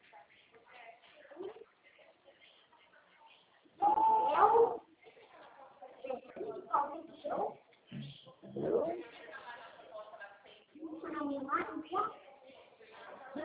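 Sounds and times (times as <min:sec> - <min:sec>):
quiet murmured talking: 0:00.0 - 0:13.4
person imitating a kitten meow: 0:03.8 - 0:04.8.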